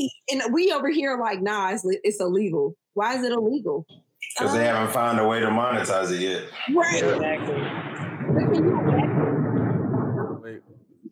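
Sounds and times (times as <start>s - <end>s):
speech: 0.0s - 9.1s
thunder rumbling in a thunderstorm: 4.7s - 11.1s.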